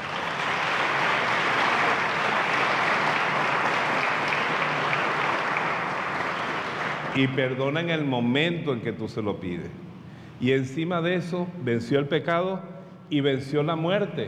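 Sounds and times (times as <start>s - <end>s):
congregation applauding: 0.0s - 7.6s
speech: 7.2s - 9.8s, 10.4s - 14.2s.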